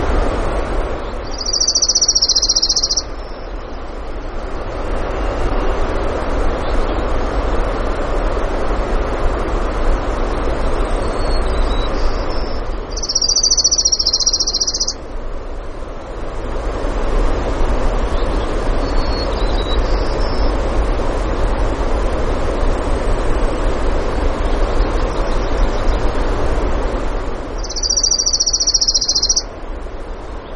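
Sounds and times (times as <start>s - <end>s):
constant rushing noise: 0.0s - 30.5s
orange-crowned warbler trilling in Denali, Alaska: 1.1s - 3.4s, 11.1s - 15.0s, 18.2s - 20.6s, 27.6s - 29.5s
faint bird chips: 1.3s - 3.0s, 13.0s - 15.0s, 27.6s - 29.4s.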